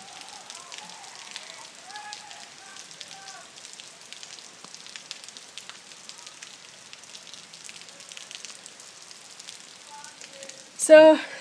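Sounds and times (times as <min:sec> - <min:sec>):
heavy drips from full overflowing rain gutters: 0:00.0 - 0:11.3
steady rain: 0:00.0 - 0:11.3
speech: 0:10.9 - 0:11.3.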